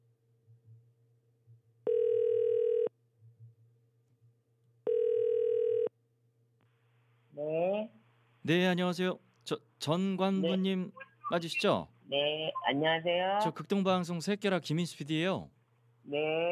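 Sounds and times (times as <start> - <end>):
telephone line tones while placing a call: 1.9 - 2.9, 4.9 - 5.9
speech: 8.5 - 16.5.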